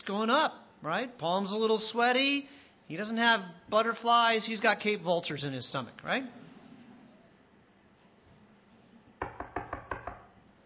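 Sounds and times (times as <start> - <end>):
speech: 0.0 - 6.4
knocking on a door: 9.2 - 10.4.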